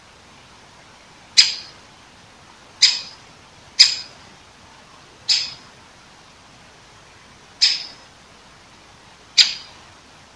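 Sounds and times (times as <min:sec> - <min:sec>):
Great Spotted Woodpecker giving sharp clipped kik calls: 0:01.4 - 0:01.8, 0:02.8 - 0:03.2, 0:03.8 - 0:04.2, 0:05.2 - 0:05.7, 0:07.6 - 0:08.1, 0:09.4 - 0:09.8.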